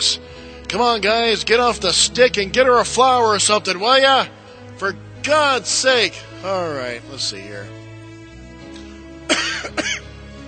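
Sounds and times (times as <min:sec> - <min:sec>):
speech: 0:00.0 - 0:07.8
unwell person coughing harshly: 0:09.3 - 0:10.1.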